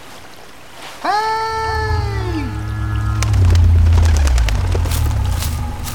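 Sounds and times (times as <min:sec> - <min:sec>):
deep rumble from under a waterfall: 0:00.0 - 0:05.9
speech: 0:01.0 - 0:01.3
crackling bursts: 0:03.0 - 0:05.9.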